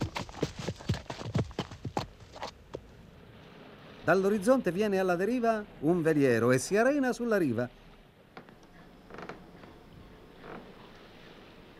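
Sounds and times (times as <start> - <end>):
three riders' horses galloping: 0.0 - 2.9
speech: 4.1 - 7.8.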